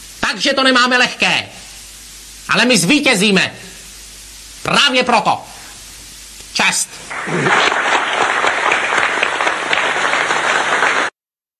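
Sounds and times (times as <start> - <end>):
speech: 0.3 - 1.6, 2.5 - 3.7, 4.6 - 5.5, 6.6 - 7.8
crowd applause: 7.1 - 11.1.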